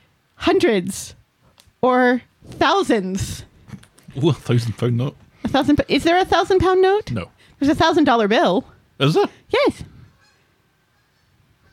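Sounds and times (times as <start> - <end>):
speech: 0.4 - 1.2, 1.8 - 3.5, 4.2 - 9.9
geese honking: 10.1 - 11.7.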